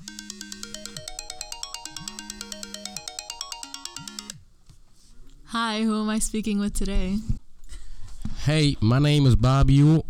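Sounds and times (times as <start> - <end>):
electronic telephone ringtone as a caller dials in: 0.0 - 4.4
speech: 5.5 - 7.4, 8.4 - 10.0.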